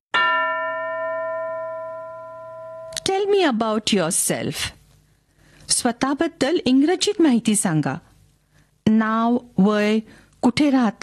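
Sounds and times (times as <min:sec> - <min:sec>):
single bell stroke as a classroom cue: 0:00.2 - 0:03.1
speech: 0:03.1 - 0:04.8, 0:05.7 - 0:08.1, 0:08.9 - 0:11.0.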